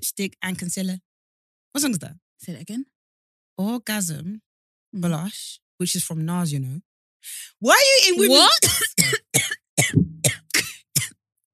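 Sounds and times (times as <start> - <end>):
speech: 0.1 - 1.1, 1.7 - 3.0, 3.6 - 10.4
person coughing with harsh hacks: 8.5 - 11.5.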